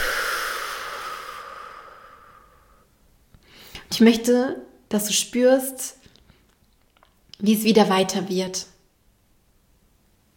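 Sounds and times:
slow breath out during a guided breathing exercise: 0.0 - 3.9
speech: 4.0 - 6.0, 7.4 - 8.7.

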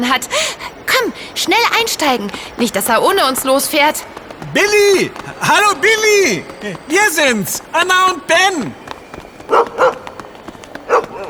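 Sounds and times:
speech: 0.1 - 8.8
dog barking at a train about to depart: 9.5 - 10.1, 10.9 - 11.2.

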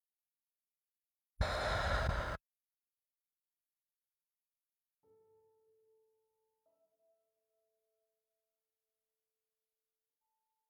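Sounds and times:
deep breath through the nose during guided meditation: 1.4 - 2.4.

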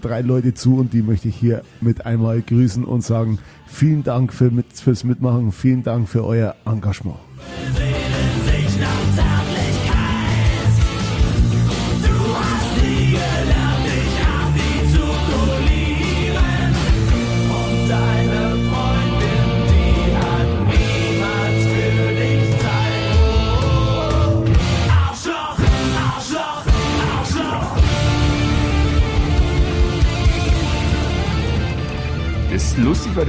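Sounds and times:
speech: 0.0 - 7.8, 32.8 - 33.2
loud rock song with driving guitar riff and full band: 7.4 - 33.2.

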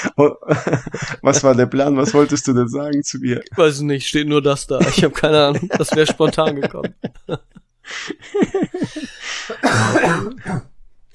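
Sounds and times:
laughter: 0.0 - 3.9, 4.5 - 10.5
speech: 0.1 - 11.1
person coughing: 8.8 - 11.1
rough throat clearing: 9.5 - 11.1.

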